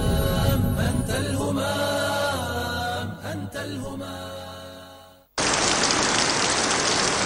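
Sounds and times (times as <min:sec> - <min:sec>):
music: 0:00.0 - 0:05.3
rain falling: 0:05.4 - 0:07.2.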